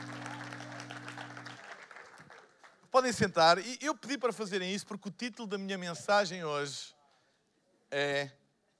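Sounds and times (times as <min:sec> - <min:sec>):
sustained low instrumental tone: 0:00.0 - 0:01.6
audience applause for the band and singers: 0:00.0 - 0:02.8
speech: 0:03.0 - 0:07.0, 0:07.9 - 0:08.4.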